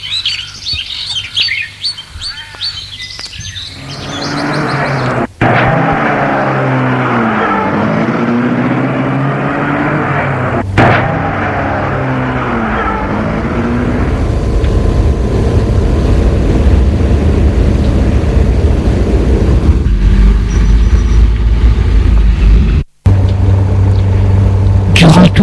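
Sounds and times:
car engine rumble on a trip to school: 0:00.0 - 0:25.4
car road noise: 0:00.0 - 0:25.4.

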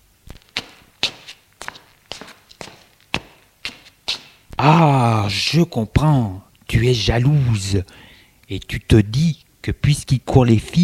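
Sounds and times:
man's footsteps pacing nervously: 0:00.3 - 0:04.7
speech: 0:04.6 - 0:10.8.

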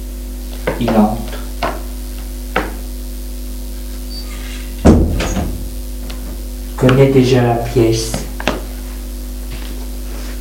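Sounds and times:
steady low hum: 0:00.0 - 0:10.3
speech: 0:00.8 - 0:01.4, 0:06.8 - 0:08.2
bedroom door creaking and rattling as it swings: 0:04.1 - 0:05.8.

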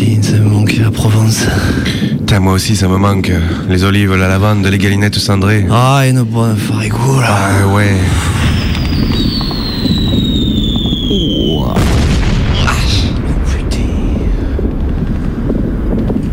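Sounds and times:
constant low rumble: 0:00.0 - 0:16.3
speech: 0:02.4 - 0:08.4, 0:09.0 - 0:09.4
high falling whistle of an incoming artillery shell: 0:08.0 - 0:11.8
nearby artillery shell bursting with a heavy broad blast: 0:08.1 - 0:16.3.

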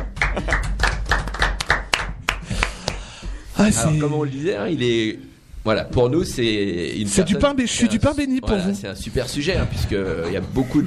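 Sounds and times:
crowd clapping: 0:00.0 - 0:03.2
speech: 0:03.6 - 0:10.8.

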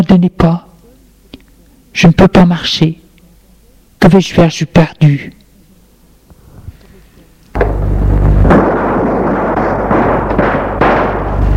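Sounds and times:
speech: 0:00.0 - 0:00.7, 0:02.0 - 0:03.0, 0:04.0 - 0:05.4
dense roar: 0:07.6 - 0:11.5
loud gunshots inside a store: 0:07.6 - 0:11.5.

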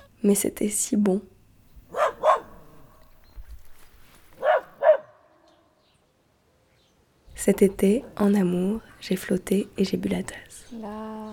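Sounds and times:
speech: 0:00.2 - 0:01.3, 0:07.4 - 0:11.3
dog barking: 0:01.9 - 0:03.0, 0:04.4 - 0:05.3.

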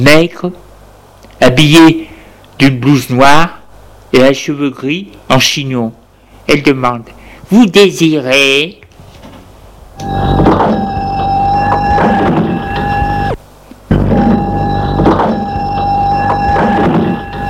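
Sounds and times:
speech: 0:00.0 - 0:00.6, 0:01.4 - 0:08.8, 0:10.0 - 0:10.8
shop door opening with mechanical hum and rumble: 0:09.2 - 0:17.4.

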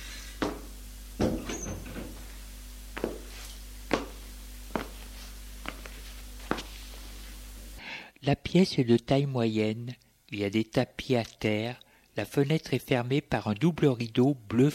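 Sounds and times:
people walking in with footsteps: 0:00.4 - 0:02.4, 0:03.0 - 0:07.4
glass door rattling open with clunks: 0:01.2 - 0:02.2
speech: 0:08.2 - 0:14.7.

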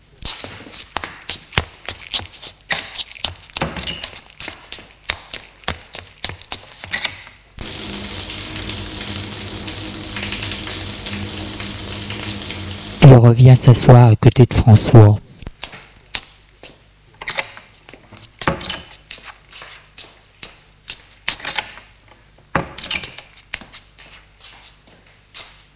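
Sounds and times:
tap water running in a bathroom as someone washes: 0:07.6 - 0:13.8
speech: 0:13.2 - 0:15.2.

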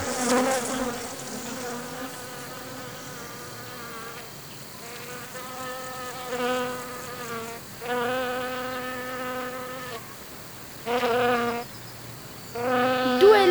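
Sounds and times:
bees buzzing: 0:00.0 - 0:09.5, 0:12.6 - 0:13.4.

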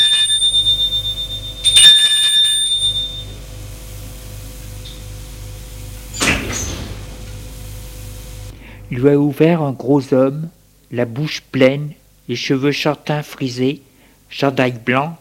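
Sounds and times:
doorbell of an apartment building ringing: 0:00.0 - 0:03.4
low pulsing hum: 0:00.0 - 0:09.3
door clunk: 0:06.0 - 0:07.4
speech: 0:08.9 - 0:15.1.

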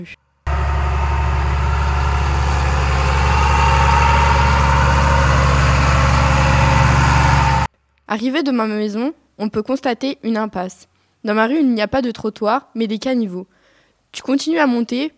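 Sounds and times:
speech: 0:00.0 - 0:00.2, 0:08.1 - 0:15.1
tractor engine running with a deep rumble: 0:00.5 - 0:07.7.

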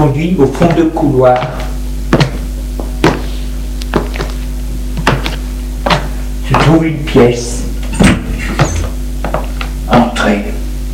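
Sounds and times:
speech: 0:00.0 - 0:01.7, 0:06.7 - 0:07.7, 0:09.9 - 0:10.6
steady low electrical hum: 0:00.0 - 0:10.9
door being shut with dull thunks and clicks: 0:07.8 - 0:09.0.

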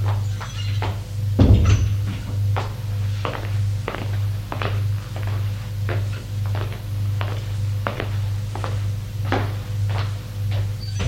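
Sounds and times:
constant low mechanical hum: 0:00.0 - 0:11.0
footsteps tapping at a walking pace: 0:00.0 - 0:11.0
glass door thudding open: 0:01.4 - 0:02.4, 0:10.9 - 0:11.0.

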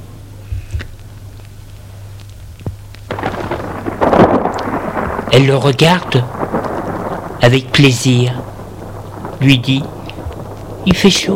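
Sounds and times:
steady low hum: 0:00.0 - 0:11.3
thunder rumbling and cracking in a storm: 0:02.6 - 0:11.3
speech: 0:05.3 - 0:06.4, 0:07.4 - 0:08.4, 0:09.4 - 0:10.0, 0:10.8 - 0:11.3.

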